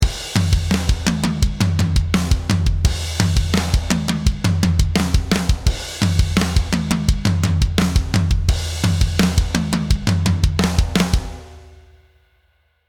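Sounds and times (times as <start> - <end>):
dry processed hard rock tom drum groove: 0.0 - 12.0.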